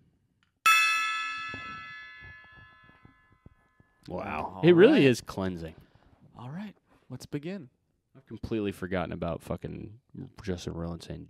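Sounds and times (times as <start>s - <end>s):
gong struck to begin meditation: 0.7s - 3.2s
speech: 4.1s - 5.8s, 6.4s - 11.2s.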